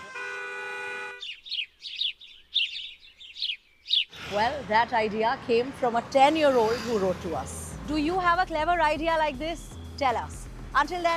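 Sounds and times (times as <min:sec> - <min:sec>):
buzzy car horn blast: 0:00.0 - 0:01.2
birds chirping and tweeting: 0:01.1 - 0:07.8
speech: 0:04.3 - 0:11.1.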